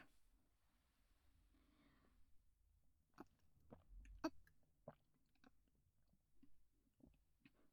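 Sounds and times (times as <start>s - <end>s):
wet mouth clicks and chewing of sticky slimy food with ponzu: 3.2s - 5.6s.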